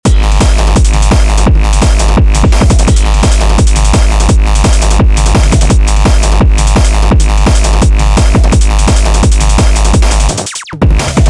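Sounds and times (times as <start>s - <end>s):
hardcore drum beat: 0.0s - 11.2s.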